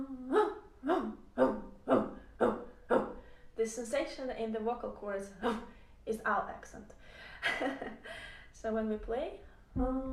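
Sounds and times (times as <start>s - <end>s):
person's voice imitating a dog barking: 0.0s - 3.2s
speech: 3.7s - 10.1s.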